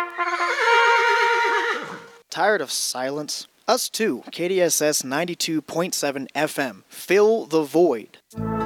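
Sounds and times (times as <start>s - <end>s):
horse neighing: 0.1s - 2.2s
speech: 2.4s - 8.5s.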